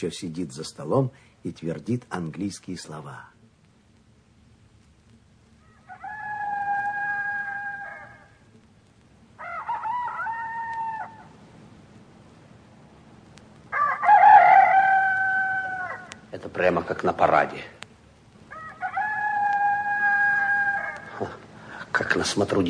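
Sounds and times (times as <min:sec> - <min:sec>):
speech: 0:00.0 - 0:03.4, 0:16.6 - 0:17.8, 0:22.2 - 0:22.6
faint low rumble: 0:00.0 - 0:22.6
village roosters crowing at dawn: 0:05.5 - 0:08.6, 0:09.2 - 0:11.5, 0:13.6 - 0:16.3, 0:18.4 - 0:21.7.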